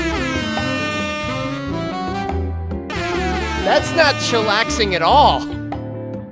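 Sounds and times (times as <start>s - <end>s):
air horn blaring: 0.0s - 2.2s, 2.9s - 5.5s
speech: 3.7s - 5.5s.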